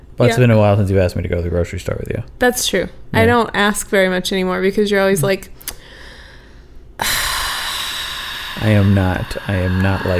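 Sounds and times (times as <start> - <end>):
speech: 0.2 - 5.8, 7.0 - 7.2, 8.6 - 10.1
harsh labored gasping breath: 5.8 - 10.1.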